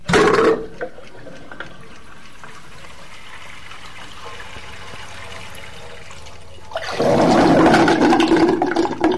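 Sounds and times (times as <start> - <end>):
water draining out of a clogged pipe: 0.0 - 9.1
sustained gush of pouring water: 2.8 - 9.1.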